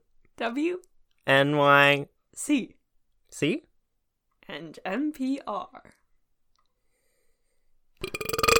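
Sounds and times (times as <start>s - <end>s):
speech: 0.4s - 3.7s, 4.5s - 6.0s
loud raspy belch: 8.0s - 8.5s.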